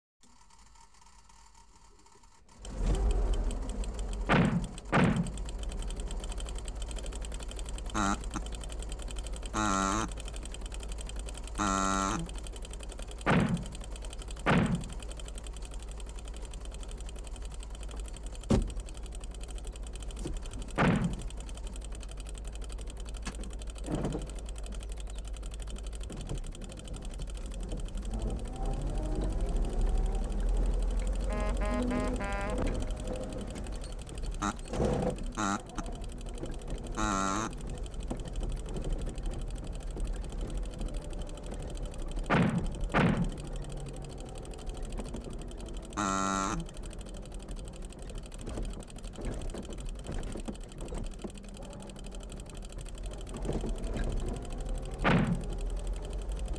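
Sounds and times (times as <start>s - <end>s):
old jalopy car: 0.2s - 56.5s.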